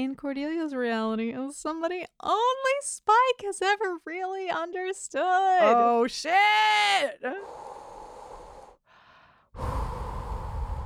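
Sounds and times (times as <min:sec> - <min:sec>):
speech: 0:00.0 - 0:07.9
heavy panicked breathing into a paper bag: 0:07.5 - 0:10.8.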